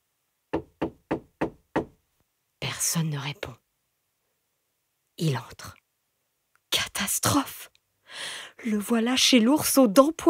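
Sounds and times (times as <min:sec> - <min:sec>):
knocks on a door at the far end of a cave: 0:00.5 - 0:02.0
speech: 0:02.8 - 0:03.6, 0:05.2 - 0:05.8, 0:07.0 - 0:10.2.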